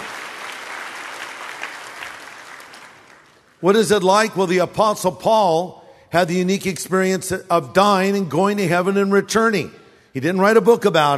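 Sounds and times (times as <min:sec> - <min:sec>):
audience applause: 0:00.0 - 0:03.6
speech: 0:03.6 - 0:11.1.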